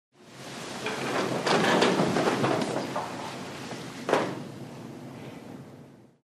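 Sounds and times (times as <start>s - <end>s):
people sitting down in court: 0.5s - 4.6s.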